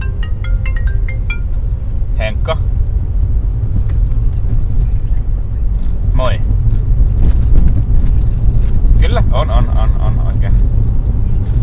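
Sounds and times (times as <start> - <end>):
mobile phone ringtone with bright electronic melody: 0.0 - 1.7
low rumbling background: 0.0 - 11.6
speech: 2.4 - 2.7.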